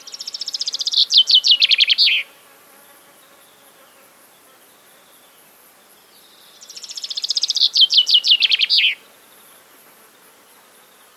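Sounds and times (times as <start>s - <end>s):
common chaffinch song: 0.0s - 2.3s, 6.0s - 9.6s.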